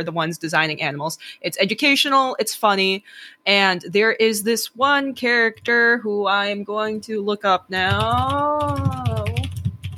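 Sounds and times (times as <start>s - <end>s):
speech: 0.0s - 9.2s
rapid crisp typing on a mechanical keyboard: 7.9s - 9.9s.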